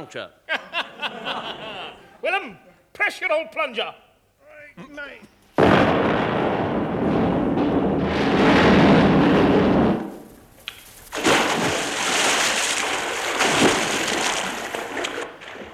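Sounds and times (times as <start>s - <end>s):
speech: 0.0s - 4.0s, 4.8s - 6.1s
laughter: 0.5s - 2.2s
bridge debris crashing: 5.6s - 15.7s
bridge explosion: 5.6s - 15.7s
heavy splashing as the bridge collapses into water: 10.9s - 15.7s.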